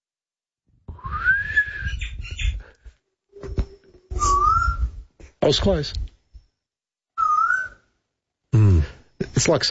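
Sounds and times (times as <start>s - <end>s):
eastern koel rising whistled call: 1.0s - 2.6s, 3.4s - 5.0s, 7.2s - 7.8s
speech: 5.5s - 6.1s, 9.4s - 9.6s.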